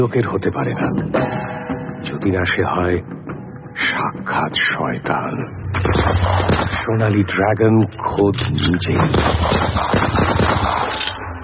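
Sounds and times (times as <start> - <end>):
speech: 0.0 - 3.2, 3.8 - 10.8
gunfire at a harbour: 5.8 - 6.8, 9.0 - 11.2.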